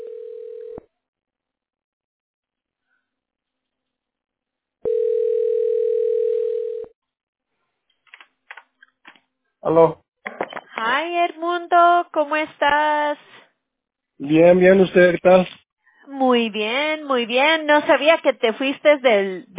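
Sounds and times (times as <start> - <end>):
telephone ringing over the line with long electronic tones: 0.0 - 0.8, 4.8 - 6.9
speech: 9.7 - 10.0, 11.4 - 13.4, 14.2 - 15.6, 16.2 - 19.5.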